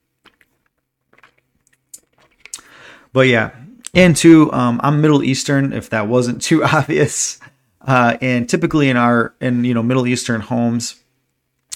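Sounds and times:
small gulps: 0:00.0 - 0:03.9
person sipping from a water bottle: 0:00.2 - 0:03.1
soft wet mouth clicks: 0:01.1 - 0:02.7
speech: 0:03.1 - 0:11.0.

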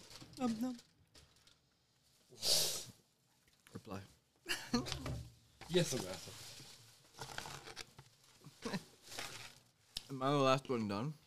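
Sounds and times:
paper rustling: 0:00.0 - 0:01.7, 0:05.6 - 0:09.8
speech: 0:00.4 - 0:00.9, 0:03.9 - 0:06.5, 0:10.1 - 0:11.2.

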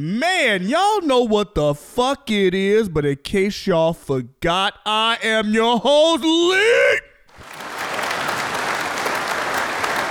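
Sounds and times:
speech: 0:00.0 - 0:07.0
crowd applauding with dense clapping: 0:07.3 - 0:10.0.

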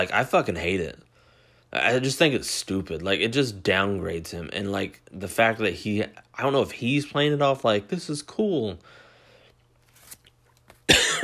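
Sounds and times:
speech: 0:00.0 - 0:01.0, 0:01.7 - 0:09.0
faint breathy noises: 0:01.0 - 0:01.8, 0:08.8 - 0:09.7
harsh cough from a person getting sick: 0:10.9 - 0:11.2.

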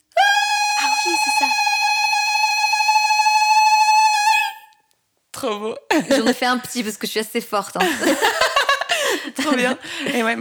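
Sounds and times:
woman's high trilling ululation with tongue clicking against the palate: 0:00.1 - 0:04.7
speech: 0:05.5 - 0:08.6, 0:09.2 - 0:10.3
laughter: 0:05.9 - 0:06.7, 0:07.8 - 0:10.3.

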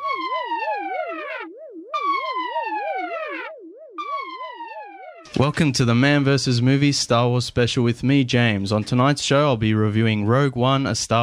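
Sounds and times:
loud warbling and wailing alarm siren: 0:00.0 - 0:05.6
speech: 0:05.3 - 0:11.2.

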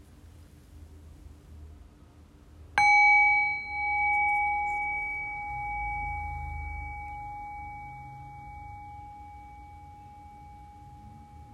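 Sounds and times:
faint low rumble: 0:00.0 - 0:11.5
single bell struck and ringing: 0:02.8 - 0:11.5.

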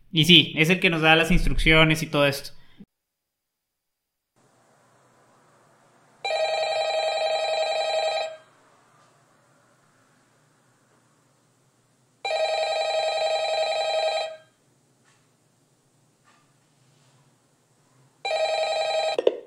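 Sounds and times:
speech: 0:00.1 - 0:02.6
telephone ringing before a recorded phone call: 0:06.2 - 0:08.5, 0:12.2 - 0:14.6, 0:18.2 - 0:19.3.

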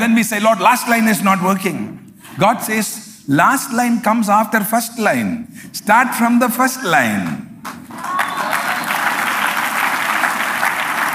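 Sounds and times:
speech: 0:00.1 - 0:07.8
audience clapping: 0:07.6 - 0:11.1.

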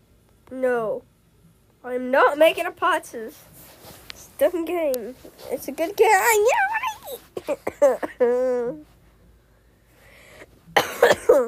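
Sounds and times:
speech: 0:00.5 - 0:01.1, 0:01.8 - 0:08.9
person coughing: 0:07.4 - 0:08.6, 0:10.8 - 0:11.4.

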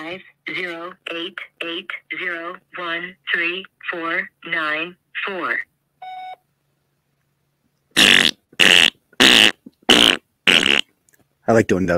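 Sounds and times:
speech: 0:00.1 - 0:05.7, 0:11.5 - 0:11.9
voicemail beep: 0:06.0 - 0:06.4
raspy fart noises left as a voicemail message: 0:08.0 - 0:10.9.

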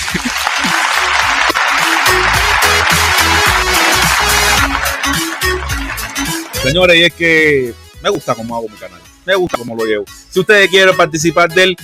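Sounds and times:
loud sustained crowd applause: 0:00.0 - 0:06.7
rhythmic bass-heavy music bed: 0:00.0 - 0:11.8
speech: 0:06.7 - 0:11.8.

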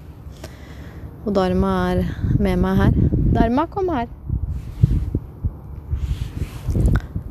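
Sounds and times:
road traffic and cars overlooking Benidorm: 0:00.0 - 0:07.2
wind buffeting a microphone on a coastal path in Spain: 0:01.0 - 0:07.2
speech: 0:01.2 - 0:04.2.

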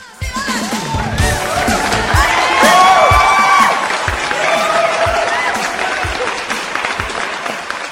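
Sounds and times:
cheers and whoops: 0:00.6 - 0:06.5
live audience clapping: 0:00.9 - 0:07.8.

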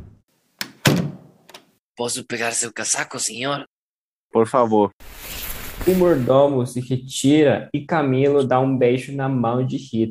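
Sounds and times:
solid wooden door thunk with brief rumble: 0:00.0 - 0:01.3
speech: 0:02.0 - 0:03.7, 0:04.3 - 0:10.0.

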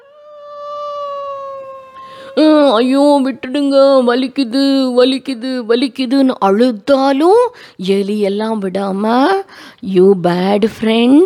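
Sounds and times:
human voice imitating a wolf howling in pain: 0:00.0 - 0:03.3
speech: 0:02.4 - 0:11.2.

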